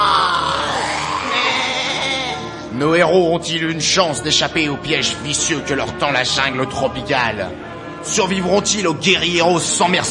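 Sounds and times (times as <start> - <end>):
wild beasts crying out in a tropical jungle among baobab trees: 0.0 - 2.8
speech: 2.8 - 10.0.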